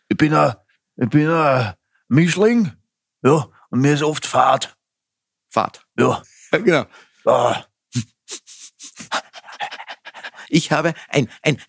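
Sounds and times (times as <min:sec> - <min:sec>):
speech: 0:00.2 - 0:04.8, 0:05.5 - 0:08.4, 0:10.5 - 0:11.6
person imitating a dog panting: 0:08.3 - 0:11.6.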